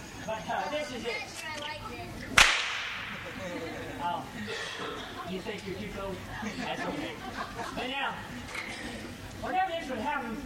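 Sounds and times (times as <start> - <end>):
speech: 0.3 - 2.2, 3.4 - 10.4
sharp whip crack with tail: 2.3 - 3.2
laughter: 3.1 - 9.2.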